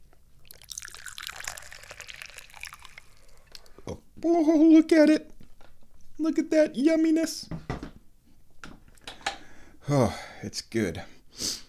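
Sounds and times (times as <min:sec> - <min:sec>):
small trickling drips and gentle liquid babble: 0:00.4 - 0:03.8
tea pouring in a splashy stream: 0:00.4 - 0:03.8
speech: 0:03.9 - 0:05.3, 0:06.2 - 0:07.6, 0:09.9 - 0:11.6.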